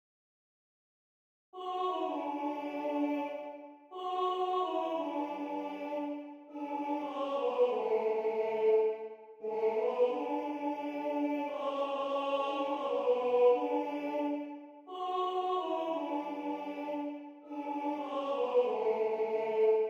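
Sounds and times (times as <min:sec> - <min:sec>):
tenor two part with other voices of a TTBB choir singing: 0:01.6 - 0:19.8.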